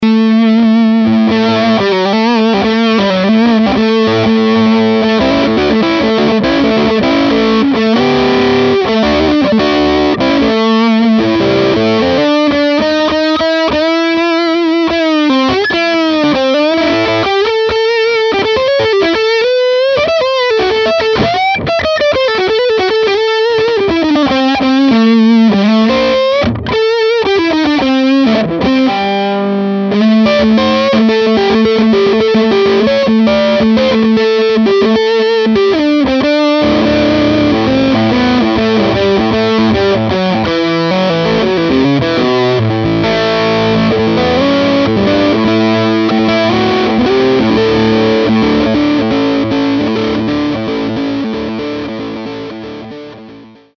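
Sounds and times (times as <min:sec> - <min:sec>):
Telecaster electric guitar: 0:00.0 - 0:53.7.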